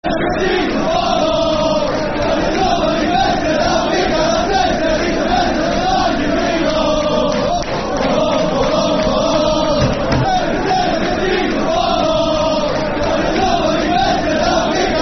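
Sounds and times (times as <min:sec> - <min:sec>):
football crowd chanting: 0:00.0 - 0:15.0.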